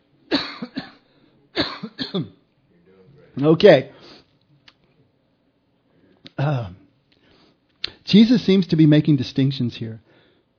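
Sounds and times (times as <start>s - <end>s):
person getting over a cough coughing: 0.3s - 1.0s, 1.6s - 2.4s
speech: 2.1s - 2.4s, 3.4s - 4.0s, 8.1s - 10.2s.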